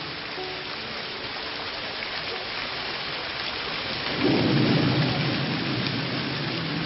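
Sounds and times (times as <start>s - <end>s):
heavy rain: 0.0s - 6.8s
deep rumble of thunder: 4.0s - 6.8s.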